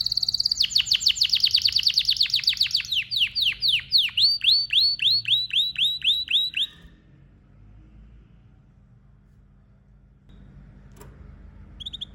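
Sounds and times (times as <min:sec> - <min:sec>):
canary singing: 0:00.0 - 0:07.0, 0:11.7 - 0:12.1.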